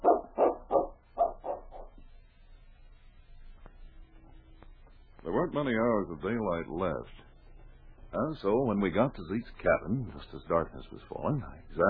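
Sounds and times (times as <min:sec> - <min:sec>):
dog barking: 0:00.0 - 0:02.0
speech: 0:05.5 - 0:07.3, 0:08.1 - 0:11.8.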